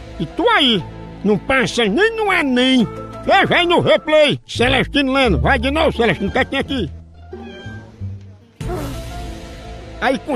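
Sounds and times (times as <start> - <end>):
speech: 0.2 - 7.0, 10.0 - 10.3
cat meowing with drawn-out wavering cries: 6.0 - 6.6, 7.3 - 8.0.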